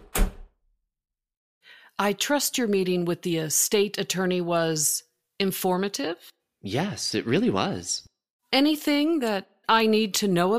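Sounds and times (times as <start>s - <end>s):
door shutting with a thud: 0.0s - 0.5s
speech: 2.0s - 10.5s.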